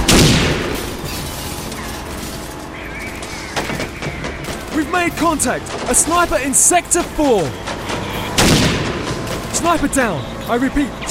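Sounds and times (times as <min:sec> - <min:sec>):
grenade explosion in a video game: 0:00.0 - 0:01.2, 0:08.3 - 0:09.3
sustained rumbling noise: 0:00.0 - 0:10.0
speech: 0:05.0 - 0:08.1, 0:09.5 - 0:11.0.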